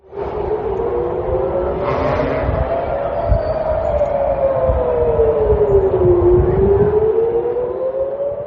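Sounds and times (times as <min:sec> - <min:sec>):
constant rumble: 0:00.0 - 0:07.0
air raid siren wailing: 0:00.0 - 0:08.4.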